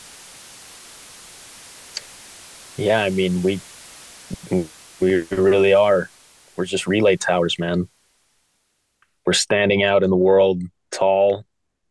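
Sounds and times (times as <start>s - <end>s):
TV static hissing: 0.0s - 9.0s
speech: 2.8s - 3.7s, 4.5s - 8.0s, 9.3s - 11.5s.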